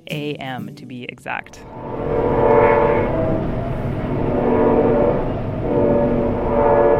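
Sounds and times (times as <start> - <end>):
speech: 0.1 - 2.6
train passing a home near the train line at night: 1.6 - 6.9.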